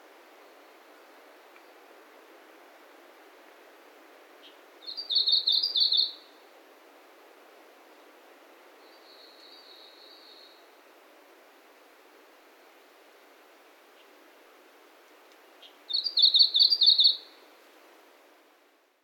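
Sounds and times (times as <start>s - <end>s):
Japanese leaf warbler song at Ozenuma, Japan: 4.2s - 6.5s, 8.6s - 10.8s, 15.0s - 17.6s.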